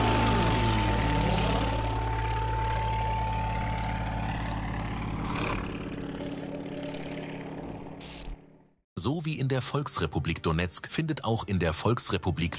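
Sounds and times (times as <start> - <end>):
racing propeller aircraft engine roaring between pylons in an air race: 0.0 - 8.8
speech: 9.0 - 12.5.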